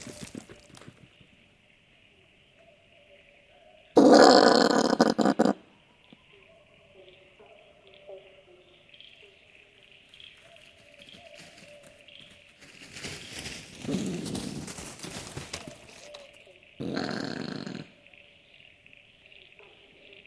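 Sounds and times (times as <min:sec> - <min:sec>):
brush-tailed possums grunting in the woods: 0:03.9 - 0:05.7, 0:13.8 - 0:14.9, 0:15.5 - 0:18.1.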